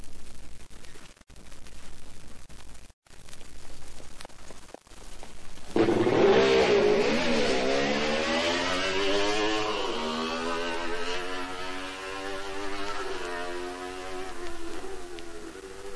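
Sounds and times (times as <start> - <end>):
Honda CR93 motorcycle engine revving on a race circuit: 5.8 - 15.9.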